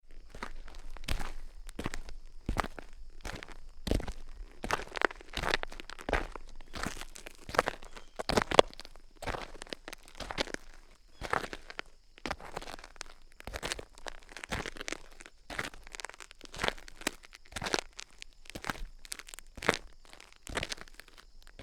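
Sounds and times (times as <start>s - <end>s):
foley footsteps walking on dirt: 0.0s - 21.6s.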